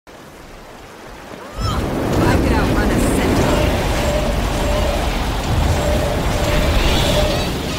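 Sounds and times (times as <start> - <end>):
overloaded incinerator fire: 1.8 - 7.7.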